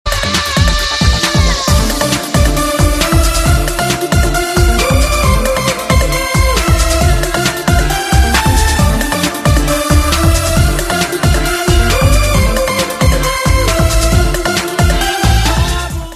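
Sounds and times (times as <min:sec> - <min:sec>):
cool beat hit ringtone: 0:01.1 - 0:16.0.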